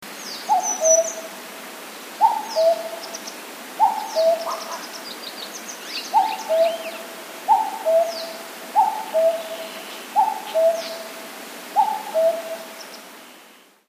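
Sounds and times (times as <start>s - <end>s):
cuckoo calling: 0.5s - 1.3s, 2.2s - 3.2s, 3.8s - 4.9s, 5.8s - 12.8s.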